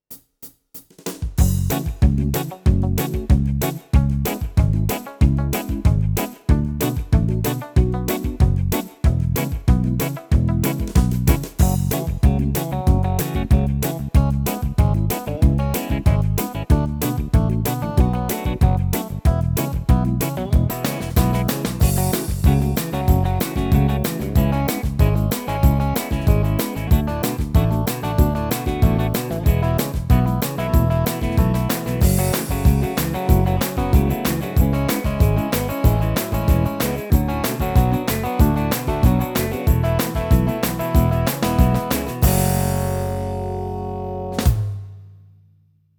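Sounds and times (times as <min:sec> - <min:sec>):
R and B skiffle style on a Yamaha Tyros3 keyboard: 0:01.4 - 0:44.0.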